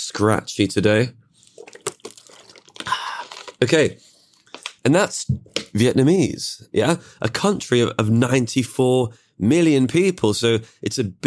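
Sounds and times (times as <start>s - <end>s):
speech: 0.1s - 1.8s, 3.6s - 4.1s, 4.8s - 11.2s
gulp: 1.4s - 3.6s
sipping water: 1.4s - 4.8s.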